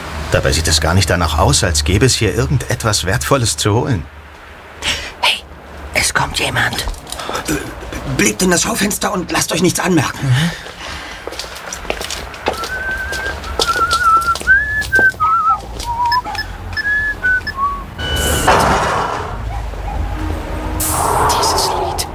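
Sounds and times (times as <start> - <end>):
bursts of rushing noise: 0.0 - 22.1
street ambience: 0.0 - 22.1
speech: 0.3 - 4.2, 6.1 - 10.7
man whistling a short song melody: 12.5 - 18.3.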